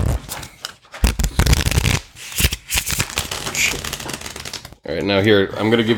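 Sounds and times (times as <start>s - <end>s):
deck of cards being shuffled with riffling flutter and soft slaps: 0.0s - 4.8s
speech: 4.9s - 5.9s.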